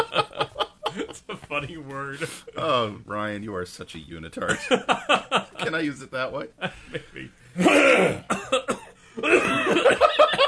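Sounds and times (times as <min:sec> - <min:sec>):
laughter: 0:00.0 - 0:02.6, 0:04.4 - 0:05.9, 0:09.2 - 0:10.4
speech: 0:01.2 - 0:08.7
rough phlegmy throat clearing: 0:07.6 - 0:09.6
two people coughing: 0:07.6 - 0:10.4.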